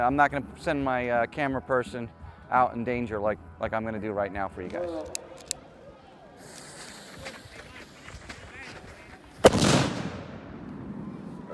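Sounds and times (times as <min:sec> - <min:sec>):
speech: 0:00.0 - 0:05.2
cannon blast with long rumbling decay: 0:09.4 - 0:11.3.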